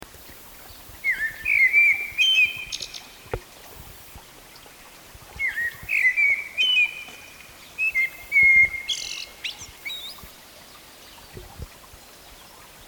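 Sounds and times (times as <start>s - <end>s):
common blackbird Turdus merula singing: 1.1s - 3.1s, 5.4s - 7.2s, 7.8s - 10.2s.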